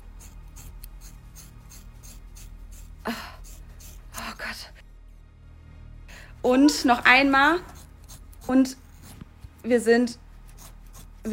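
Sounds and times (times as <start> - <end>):
scissors cutting through thick hair: 0.0 - 4.6, 7.3 - 11.3
speech: 3.1 - 3.3, 4.5 - 4.8, 6.4 - 7.7, 8.5 - 8.8, 9.6 - 10.2.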